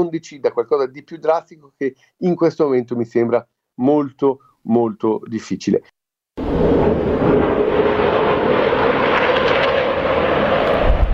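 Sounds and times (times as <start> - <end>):
speech: 0.0 - 8.1
military jets flying over a city: 6.4 - 11.1.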